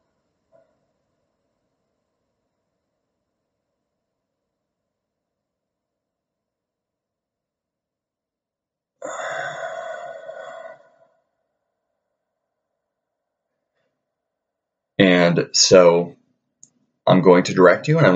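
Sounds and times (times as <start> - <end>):
loud drawn-out voiced exhale during a slow breathing exercise: 9.0 - 11.0
faint breath in during a slow breathing exercise: 9.0 - 11.1
speech: 15.0 - 16.2, 17.1 - 18.1.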